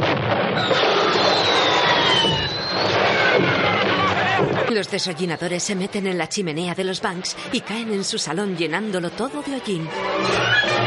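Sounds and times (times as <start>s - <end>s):
fired rocket whistling and spinning: 0.5s - 3.8s
speech: 4.8s - 10.8s.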